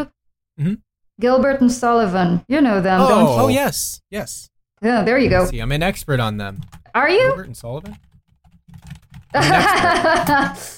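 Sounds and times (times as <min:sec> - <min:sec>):
speech: 0:00.0 - 0:08.1, 0:08.8 - 0:10.7
typing on a computer keyboard: 0:07.6 - 0:10.3
laughter: 0:09.4 - 0:10.7.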